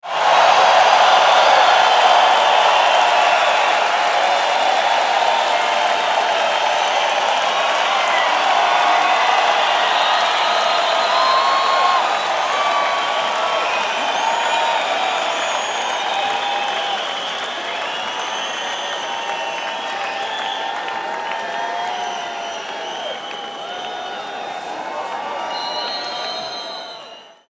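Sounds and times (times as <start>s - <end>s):
crowd at concert: 0.0s - 27.4s.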